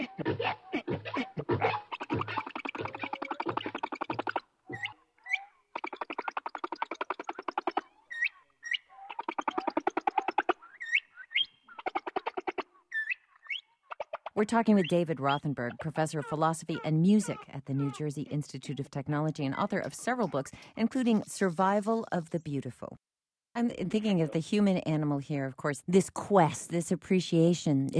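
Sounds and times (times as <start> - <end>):
sped-up humpback whale song: 0.0 - 20.4
speech: 14.4 - 27.9.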